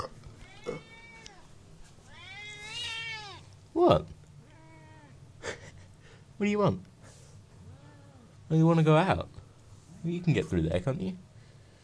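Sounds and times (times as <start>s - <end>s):
faint steady room hum: 0.0s - 11.8s
cat meowing: 0.4s - 1.5s, 2.1s - 3.5s, 4.5s - 5.2s, 7.7s - 8.3s
speech: 3.8s - 4.1s, 6.4s - 6.9s, 8.5s - 9.4s, 10.0s - 11.3s.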